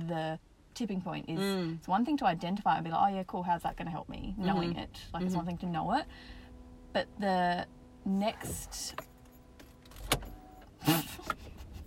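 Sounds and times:
speech: 0:00.0 - 0:09.1
car mechanical whirring: 0:03.5 - 0:11.8.

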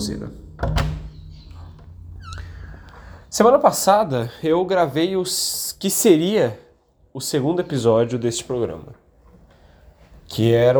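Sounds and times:
speech: 0:00.0 - 0:01.0, 0:03.3 - 0:09.0, 0:10.3 - 0:10.7
door in a house slamming shut: 0:00.0 - 0:03.3
faint squeaks and rattles: 0:00.0 - 0:03.3
low rumbling hum: 0:00.0 - 0:03.7.

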